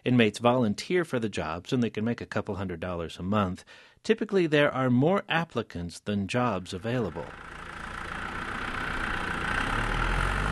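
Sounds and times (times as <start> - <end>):
speech: 0.0 - 7.6
tractor engine idling and rumbling in farm field: 7.0 - 10.5.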